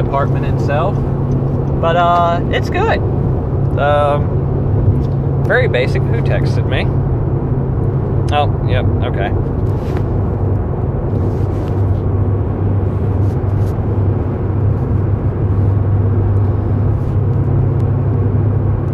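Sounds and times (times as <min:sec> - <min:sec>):
speech: 0:00.0 - 0:03.2, 0:03.8 - 0:04.4, 0:05.5 - 0:07.1, 0:08.3 - 0:10.1
car engine and road rumble inside a car while driving: 0:00.0 - 0:18.9.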